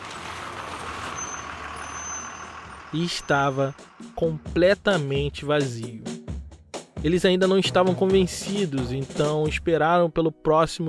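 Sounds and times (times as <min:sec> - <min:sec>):
large empty bus engine drone turning a corner: 0:00.0 - 0:05.3
faint high squeals: 0:01.0 - 0:03.8
bus air brakes hissing: 0:01.0 - 0:04.1
speech: 0:02.9 - 0:06.1, 0:07.0 - 0:10.8.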